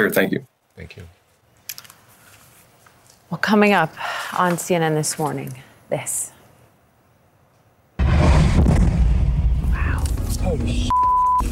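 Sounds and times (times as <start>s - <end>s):
speech: 0.0s - 1.2s, 3.3s - 6.3s, 10.5s - 10.9s
Russian missile explosion in Ukraine: 8.0s - 10.2s
steady bleep tone: 10.9s - 11.5s.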